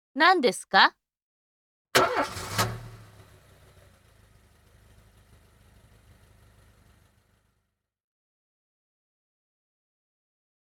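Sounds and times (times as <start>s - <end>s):
speech: 0.2s - 1.0s, 2.0s - 2.4s
car engine cranking and catching: 2.0s - 7.7s.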